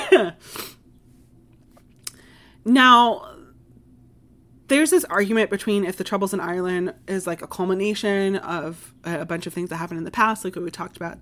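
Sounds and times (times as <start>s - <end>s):
person coughing: 0.0s - 0.7s
speech: 0.1s - 0.7s, 2.6s - 3.4s, 4.7s - 11.2s.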